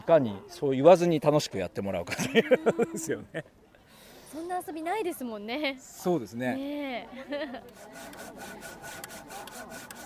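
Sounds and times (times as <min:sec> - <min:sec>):
speech: 0:00.1 - 0:03.6, 0:04.3 - 0:10.0
laughter: 0:02.1 - 0:03.5, 0:07.1 - 0:08.1
handsaw cutting through a log in a woodland garden: 0:07.7 - 0:10.0.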